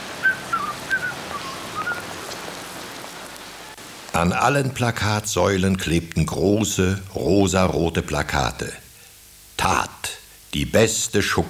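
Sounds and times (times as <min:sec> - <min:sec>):
low hiss: 0:00.0 - 0:11.4
high thin whistling notes standing in for whistling flies: 0:00.2 - 0:02.1
speech: 0:04.2 - 0:08.8, 0:10.5 - 0:11.4.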